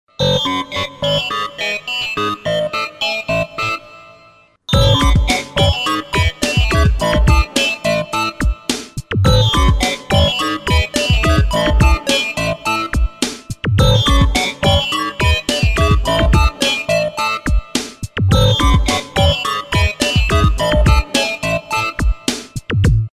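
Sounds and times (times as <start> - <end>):
Nokia robotic phone sound: 0.2 - 3.8, 4.7 - 8.4, 9.3 - 13.0, 13.8 - 17.5, 18.3 - 22.0.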